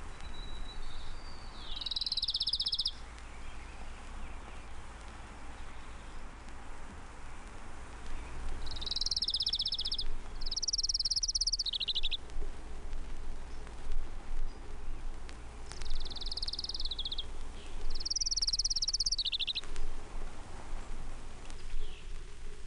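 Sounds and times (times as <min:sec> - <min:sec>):
Townsend's warbler singing high buzzy phrases: 0:00.0 - 0:06.5, 0:07.9 - 0:12.2, 0:14.4 - 0:19.9, 0:21.5 - 0:22.3
steady low outdoor hum: 0:00.0 - 0:22.6
faint insect or frog chatter: 0:01.7 - 0:03.0, 0:08.6 - 0:12.2, 0:15.8 - 0:17.3, 0:17.9 - 0:19.6.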